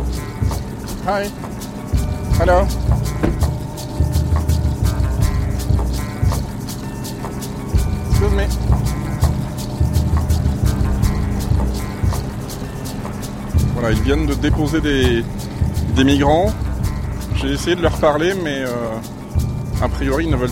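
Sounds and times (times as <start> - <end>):
bus engine idling: 0.0 - 20.5
speech: 1.0 - 1.7, 2.4 - 3.0, 8.4 - 8.9, 13.8 - 16.6, 17.4 - 19.2, 19.8 - 20.5.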